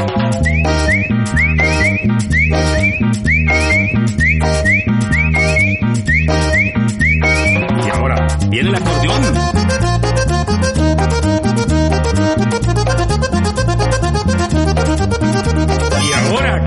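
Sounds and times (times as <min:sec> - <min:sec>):
upbeat band with bouncing bass and percussion: 0:00.0 - 0:16.6
several people whistling a rising melody: 0:00.4 - 0:07.6.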